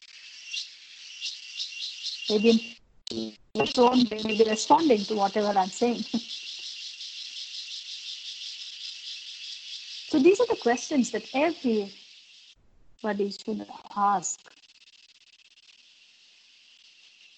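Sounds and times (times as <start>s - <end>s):
cicadas buzzing in the mountains: 0.0s - 17.3s
speech: 2.3s - 6.4s, 10.2s - 12.0s, 13.0s - 14.6s.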